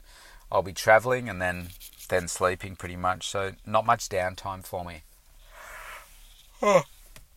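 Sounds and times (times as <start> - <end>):
speech: 0.5 - 5.1, 6.6 - 6.9
person yawning: 6.6 - 6.9.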